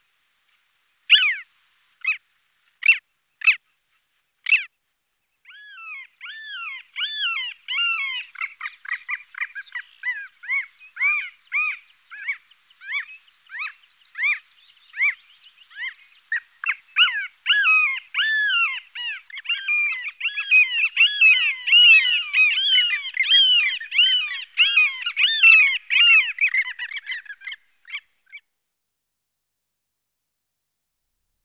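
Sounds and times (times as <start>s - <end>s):
long-tailed skua Stercorarius longicaudus: 1.1s - 2.2s, 5.5s - 28.4s.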